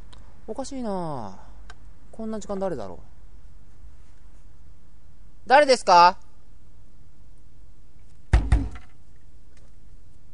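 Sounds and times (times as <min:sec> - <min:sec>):
speech: 0:00.5 - 0:01.5, 0:02.2 - 0:03.1, 0:05.5 - 0:06.2
knocking on a hotel room door: 0:08.3 - 0:08.9.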